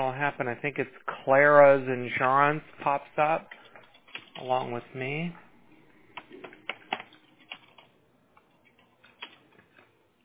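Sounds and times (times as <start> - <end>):
speech: 0.0 - 3.6, 4.4 - 5.4
typing on a computer keyboard: 3.6 - 4.5, 6.1 - 9.9.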